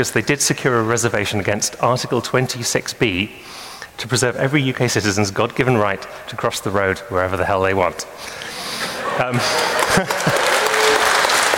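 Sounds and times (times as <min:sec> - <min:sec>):
speech: 0:00.0 - 0:10.4
laughter: 0:08.4 - 0:11.5
audience applause: 0:09.2 - 0:11.5.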